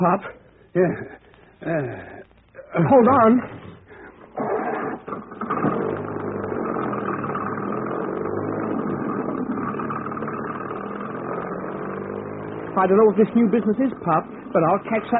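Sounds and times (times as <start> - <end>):
speech: 0.0 - 3.6, 12.8 - 15.1
car engine starting with quick revs: 2.8 - 15.1
car driving away down a hill: 4.7 - 15.1.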